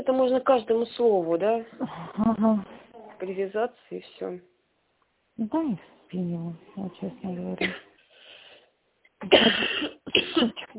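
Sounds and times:
speech: 0.0 - 4.5, 5.4 - 7.9, 9.2 - 10.7
person with an irritated scratchy throat coughing: 7.6 - 7.9, 9.2 - 10.7.

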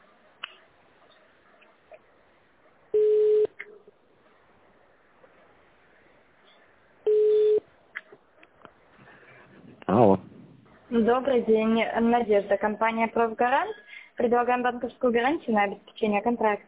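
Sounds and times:
telephone beeps while a call is transferred: 3.0 - 3.6, 7.1 - 7.6
speech: 11.0 - 16.6.

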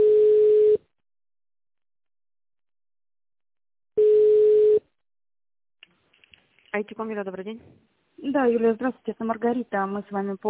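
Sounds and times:
telephone line beeps during a call transfer: 0.0 - 0.8, 4.0 - 4.8
speech: 6.8 - 10.4.

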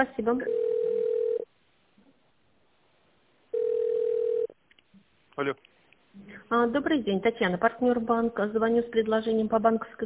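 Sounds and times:
speech: 0.0 - 0.7, 5.4 - 10.0
telephone ringback tone beeps: 0.5 - 1.4, 3.5 - 4.5.

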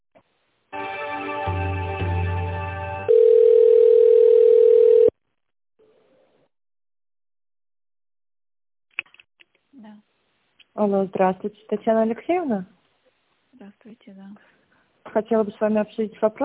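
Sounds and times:
buzzing multi-tone telephone signal during office call transfer: 3.1 - 5.1
speech: 10.8 - 12.8, 13.6 - 14.5, 15.1 - 16.4.

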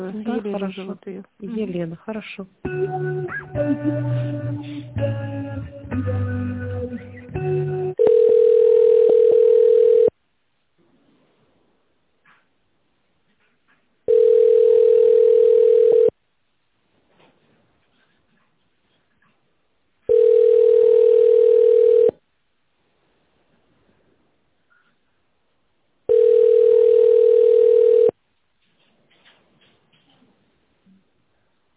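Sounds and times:
speech: 0.0 - 6.2
telephone ringback tone over a phone line during call transfer: 8.0 - 10.1, 14.1 - 16.1, 20.1 - 22.2, 26.1 - 28.2.

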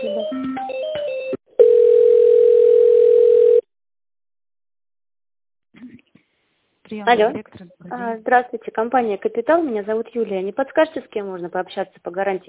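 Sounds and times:
mixed telephone beeps during call transfer: 1.6 - 3.6
speech: 6.9 - 12.4.

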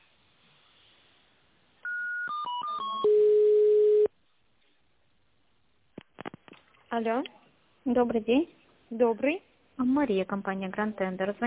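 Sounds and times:
electronic telephone tones on a line while a call is being transferred: 1.8 - 4.1
speech: 7.0 - 11.4.

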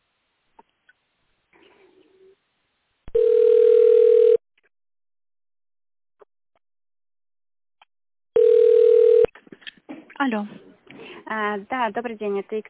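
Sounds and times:
telephone tone dialing beeps on an automated bank line: 3.1 - 4.4, 8.4 - 9.3
speech: 10.2 - 10.6, 11.3 - 12.6.

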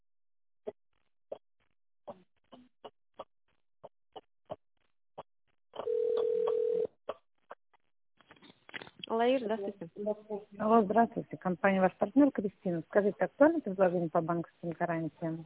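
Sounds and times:
telephone keypad tone dialing of an extension number: 5.8 - 6.9
speech: 9.2 - 15.4.

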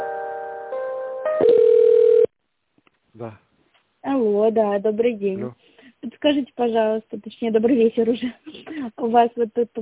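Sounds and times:
electronic telephone tone while a call is transferred: 1.3 - 2.3
speech: 3.2 - 3.5, 4.2 - 9.7.

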